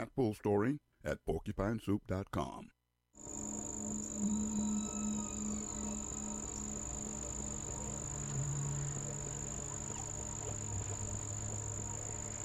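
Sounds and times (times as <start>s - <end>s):
speech: 0.0s - 3.5s
sustained high hum: 3.2s - 12.4s
whale vocalization effect with tonal moans and sweeping calls: 4.0s - 12.4s.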